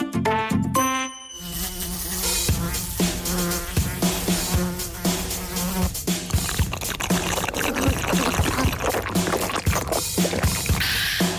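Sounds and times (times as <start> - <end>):
bright busy musical backing with chiming tones: 0.6 - 1.7
housefly buzzing: 1.4 - 10.8.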